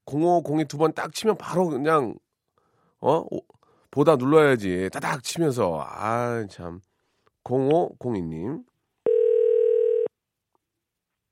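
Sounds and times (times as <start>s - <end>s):
speech: 0.1s - 2.2s, 3.0s - 9.2s
electronic ringback tone from an outgoing phone call: 9.0s - 10.1s.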